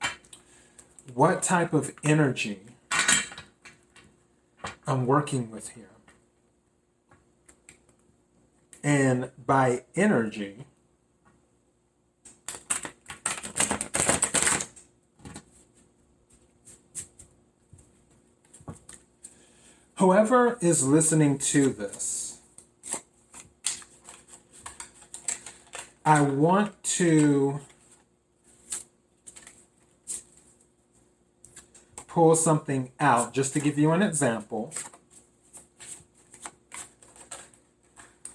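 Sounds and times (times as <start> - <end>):
speech: 1.1 - 2.7, 4.9 - 6.0, 8.8 - 10.7, 20.0 - 22.2, 26.1 - 27.7, 32.2 - 34.9
stiff tarot cards being shuffled: 12.3 - 15.6, 21.5 - 26.8, 27.6 - 30.6, 34.6 - 38.3.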